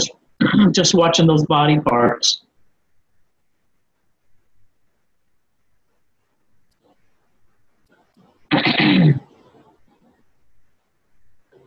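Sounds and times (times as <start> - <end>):
speech: 0.0 - 2.4
person clearing throat: 0.4 - 0.7, 8.5 - 9.4.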